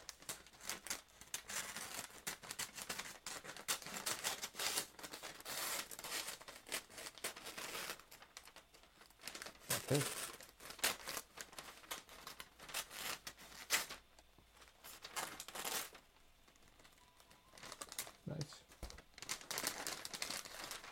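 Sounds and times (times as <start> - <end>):
scissors cutting Christmas gift wrapping paper: 0.0 - 8.6, 9.2 - 14.0, 14.9 - 16.0, 19.2 - 20.8
Christmas gift wrapping paper rustling and crinkling: 0.0 - 20.8
speech: 9.9 - 10.2.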